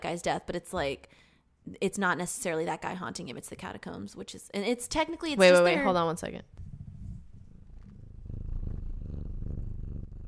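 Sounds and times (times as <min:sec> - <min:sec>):
speech: 0:00.1 - 0:06.6
pet cat purring: 0:06.5 - 0:10.2.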